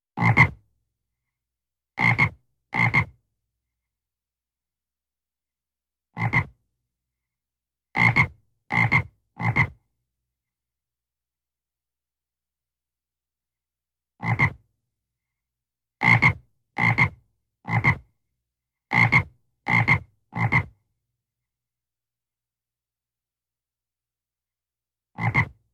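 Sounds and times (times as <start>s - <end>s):
frog croaking loudly: 2.0s - 3.2s, 6.2s - 6.6s, 8.0s - 9.8s, 14.2s - 14.6s, 16.0s - 18.0s, 18.9s - 20.8s, 25.2s - 25.5s.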